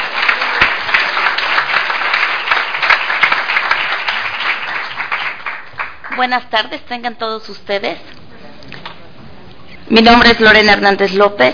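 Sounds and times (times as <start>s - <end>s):
room full of people applauding: 0.0s - 6.3s
speech: 6.2s - 8.1s, 9.9s - 11.5s.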